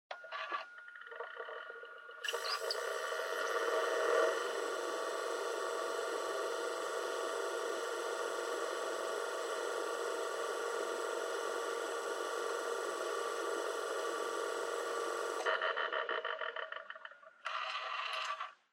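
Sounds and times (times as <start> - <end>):
portable stereo CD drive noise during play and stop: 0.1 - 18.5.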